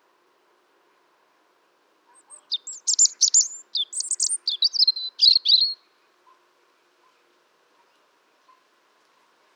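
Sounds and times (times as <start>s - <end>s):
European robin Erithacus rubecula singing tinkling notes and trills: 2.1s - 5.9s.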